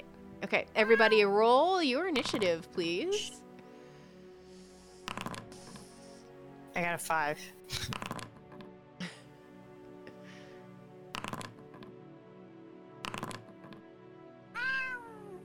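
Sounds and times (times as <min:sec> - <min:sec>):
speech: 0:00.5 - 0:03.4, 0:06.8 - 0:08.0
cat meowing: 0:00.8 - 0:01.3, 0:14.6 - 0:15.4.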